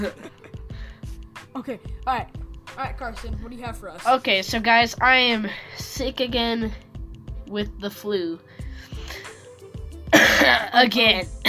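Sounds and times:
speech: 0:00.0 - 0:00.3, 0:01.6 - 0:06.8, 0:07.5 - 0:09.2, 0:10.4 - 0:11.4
person coughing: 0:10.1 - 0:10.8.

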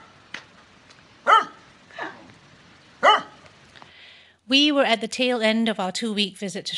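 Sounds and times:
dogs barking: 0:01.2 - 0:02.2, 0:03.0 - 0:03.4
speech: 0:04.5 - 0:06.7.

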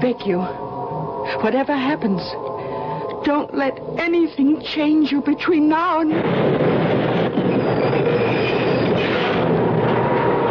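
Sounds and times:
speech: 0:00.0 - 0:00.7, 0:01.3 - 0:02.5, 0:03.2 - 0:06.9
subway train rumbling along the tracks: 0:00.0 - 0:10.4
faint high squeals from subway train wheels: 0:06.3 - 0:10.4.

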